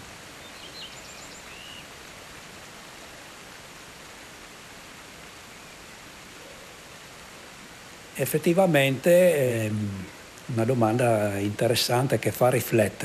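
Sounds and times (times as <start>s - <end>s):
faint bird chirps: 0.0s - 2.0s, 5.4s - 7.0s
running water in a village: 1.4s - 13.0s
speech: 8.2s - 13.0s.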